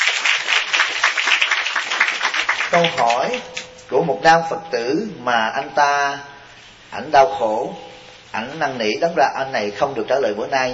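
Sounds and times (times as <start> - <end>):
audience applause at a Buddhist teaching session: 0.0 - 3.7
speech: 2.7 - 6.3, 6.9 - 10.7.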